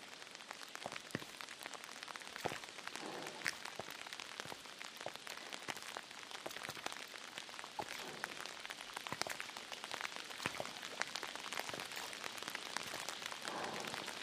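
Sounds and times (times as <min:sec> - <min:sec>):
steady heavy rain: 0:00.0 - 0:14.2.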